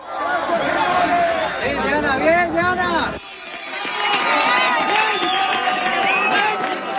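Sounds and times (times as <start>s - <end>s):
outdoor crowd cheering as a woman is pulled alive from earthquake rubble in Colombia: 0.0s - 6.9s
crowd clapping: 3.2s - 6.9s.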